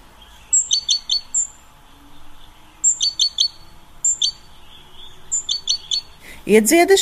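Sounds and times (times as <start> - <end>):
tits chirping in the morning: 0.0 - 6.9
speech: 6.5 - 6.9.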